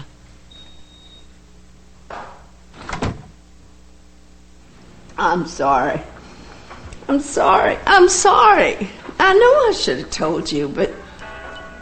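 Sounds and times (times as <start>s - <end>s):
door closing as someone walks out and leaves: 2.1s - 3.4s
soft shuffle: 4.6s - 11.7s
speech: 5.2s - 6.1s, 7.1s - 11.0s.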